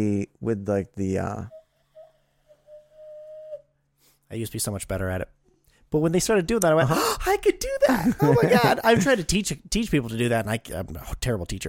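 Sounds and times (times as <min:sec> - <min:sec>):
speech: 0:00.0 - 0:01.6, 0:04.3 - 0:11.6
hand whistle blown through cupped hands: 0:01.5 - 0:03.8
laughter: 0:07.8 - 0:09.3.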